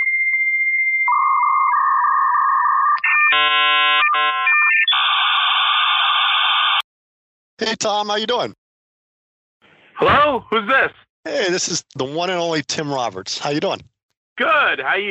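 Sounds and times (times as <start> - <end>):
telephone ringing during an outgoing call: 0.8 - 6.8
speech: 7.6 - 8.6, 10.0 - 15.1.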